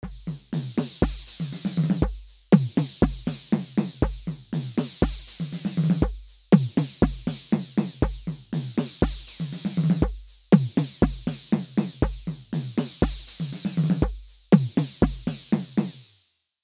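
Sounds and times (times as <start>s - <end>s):
drum with echo and flanger effect: 0.0s - 16.1s.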